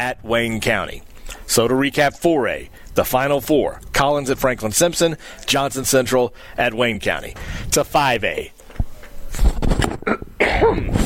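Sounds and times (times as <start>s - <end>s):
speech: 0.0s - 8.6s, 9.3s - 11.0s
person clearing throat: 9.9s - 11.0s.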